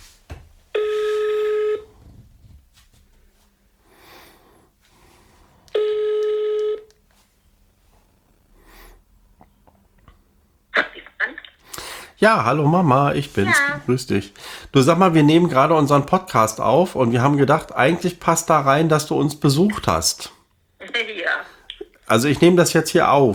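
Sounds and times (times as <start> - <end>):
telephone ringing out on loudspeaker: 0.7 - 2.0, 5.7 - 6.9
speech: 12.2 - 20.3, 22.1 - 23.3.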